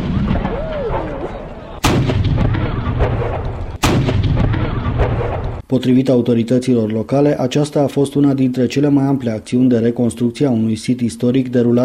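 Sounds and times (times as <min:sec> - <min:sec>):
ceremonial cannon shots of a salute outdoors with long rolling echo: 0:00.0 - 0:05.6
speech: 0:05.7 - 0:11.8.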